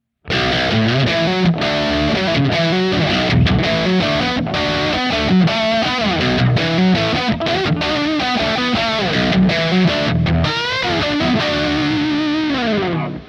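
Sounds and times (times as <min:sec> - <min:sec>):
high-gain electric guitar lead on bridge humbucker pickup: 0:00.0 - 0:13.2.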